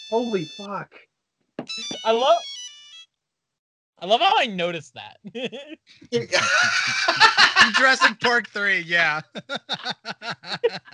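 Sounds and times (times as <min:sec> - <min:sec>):
ringtone electronic melody: 0:00.0 - 0:00.7, 0:01.6 - 0:03.1
speech: 0:00.1 - 0:02.5, 0:04.0 - 0:10.9
laughter: 0:05.2 - 0:10.9.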